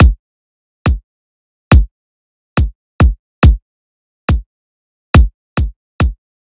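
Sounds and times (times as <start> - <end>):
kick drum: 0.0 - 0.2, 1.7 - 1.9, 2.6 - 3.6, 5.2 - 6.2.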